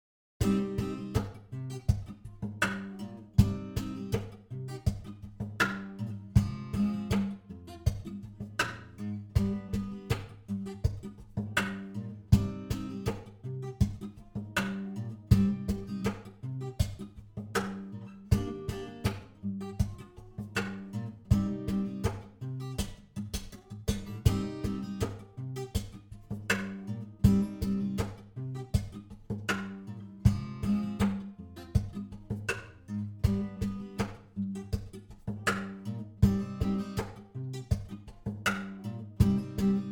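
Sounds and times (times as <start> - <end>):
guitar playing: 0.4 - 39.9.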